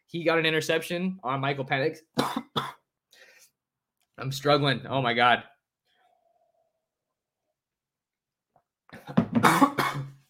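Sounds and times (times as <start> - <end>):
speech: 0.1 - 2.7, 4.2 - 5.5
harsh raspy coughing with throaty clearing: 2.2 - 2.9, 9.0 - 10.2.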